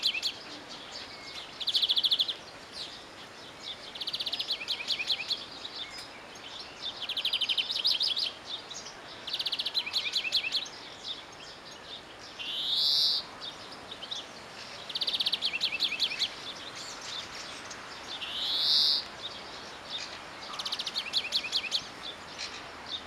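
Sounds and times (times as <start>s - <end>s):
European greenfinch Chloris chloris twittering trills and nasal wheeze: 0.0s - 23.0s
soft background noise: 0.0s - 23.0s.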